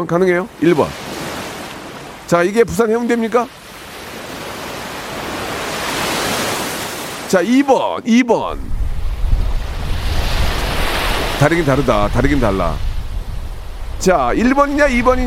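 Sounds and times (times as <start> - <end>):
speech: 0.0 - 1.1, 2.3 - 3.6, 7.3 - 8.8, 11.4 - 12.9, 14.0 - 15.2
ocean surf breaking at a beach: 0.0 - 15.2
wind buffeting the microphone: 8.4 - 15.2.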